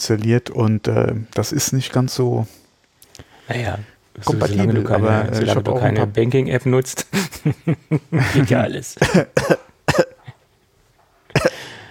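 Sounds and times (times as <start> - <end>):
speech: 0.0 - 2.6, 3.2 - 9.7
laughter: 7.1 - 8.7
person coughing: 9.0 - 10.4, 11.3 - 11.8.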